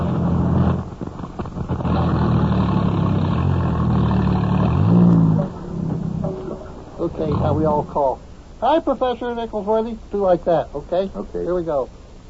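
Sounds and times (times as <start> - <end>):
car engine rumbling and revving: 0.0 - 8.6
speech: 7.6 - 12.0.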